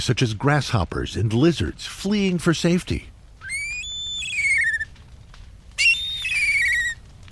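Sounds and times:
speech: 0:00.0 - 0:03.1
black kite calls: 0:03.4 - 0:04.9, 0:05.8 - 0:07.0.

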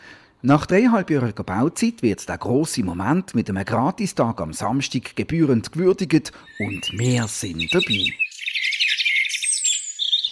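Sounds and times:
speech: 0:00.4 - 0:08.2
several birds chirping and twittering in a high-pitched chorus: 0:04.6 - 0:10.3
longer whistled bird notes: 0:06.4 - 0:10.3.

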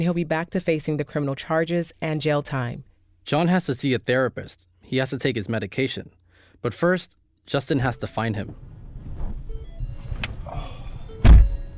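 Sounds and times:
speech: 0:00.0 - 0:08.7
rustling inside a vehicle: 0:08.4 - 0:10.5
faint shifting movement inside a vehicle as a man gets in: 0:08.4 - 0:11.7
heavy car door of a white Prius thunking shut: 0:08.4 - 0:11.7.

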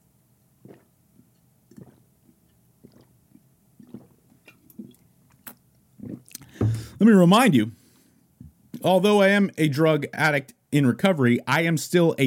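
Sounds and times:
person sipping a caffeinated drink: 0:00.6 - 0:07.0
speech: 0:07.0 - 0:07.8, 0:08.8 - 0:12.2.

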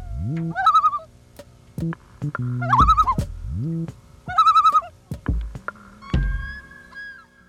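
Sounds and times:
loon calling with tremolo and wails: 0:00.0 - 0:01.1, 0:02.6 - 0:03.3, 0:04.3 - 0:05.0, 0:06.0 - 0:07.4.

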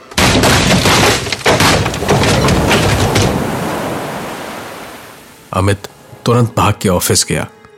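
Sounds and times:
ocean waves crashing: 0:01.1 - 0:06.4
speech: 0:05.6 - 0:07.6.

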